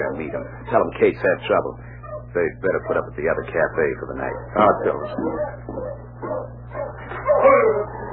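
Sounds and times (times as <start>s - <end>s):
sled dog team yipping and barking: 0.0s - 0.9s, 1.9s - 3.1s, 4.2s - 8.1s
speech: 0.0s - 6.3s
low steady hum: 0.0s - 8.1s.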